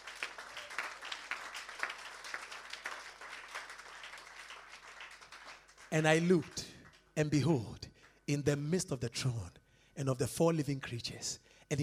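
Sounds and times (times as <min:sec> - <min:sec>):
crowd clapping: 0:00.0 - 0:08.2
speech: 0:05.9 - 0:11.8.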